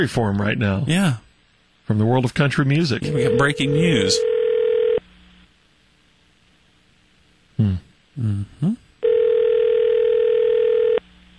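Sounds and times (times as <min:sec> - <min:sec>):
speech: 0:00.0 - 0:01.2, 0:01.9 - 0:04.3, 0:07.6 - 0:08.8
telephone ringback tone through the line: 0:03.0 - 0:05.0, 0:09.0 - 0:11.0
person murmuring: 0:07.6 - 0:08.9.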